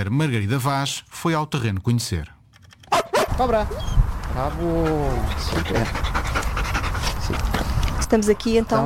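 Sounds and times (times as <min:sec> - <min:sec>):
speech: 0:00.0 - 0:02.4, 0:03.4 - 0:06.2, 0:08.1 - 0:08.8
female Belgian Malinois working dog panting: 0:04.4 - 0:08.8.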